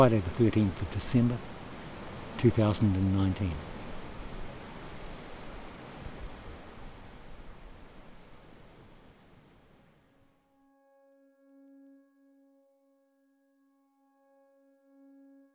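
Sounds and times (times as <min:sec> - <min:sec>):
speech: 0:00.0 - 0:01.5, 0:02.4 - 0:03.7
sea surf below a coastal headland: 0:00.0 - 0:10.0.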